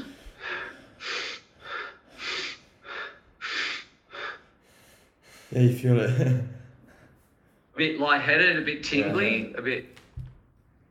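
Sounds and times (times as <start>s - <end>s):
quick forceful mouth breaths from the upper chest during a breathing exercise: 0.0s - 5.5s
speech: 5.5s - 6.6s, 7.8s - 10.0s.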